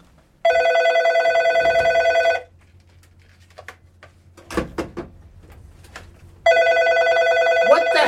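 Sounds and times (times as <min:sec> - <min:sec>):
telephone ringing in a studio: 0:00.4 - 0:02.5, 0:06.4 - 0:08.0.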